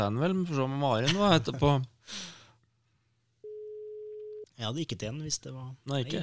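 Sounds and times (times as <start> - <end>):
speech: 0.0 - 2.4, 4.6 - 6.2
soft breathy exhale: 2.0 - 2.6
phone line ringback tone: 3.4 - 4.4.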